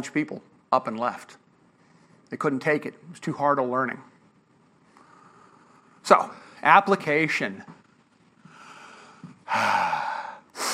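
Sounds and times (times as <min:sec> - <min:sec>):
speech: 0:00.0 - 0:01.4, 0:02.3 - 0:04.1, 0:06.0 - 0:07.8, 0:09.5 - 0:10.1
person panting heavily catching their breath: 0:08.5 - 0:10.7.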